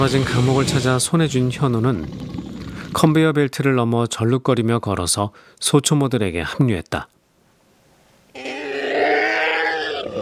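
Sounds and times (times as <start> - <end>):
monster roaring and howling: 0.0 - 3.1, 8.4 - 10.2
speech: 0.0 - 7.2.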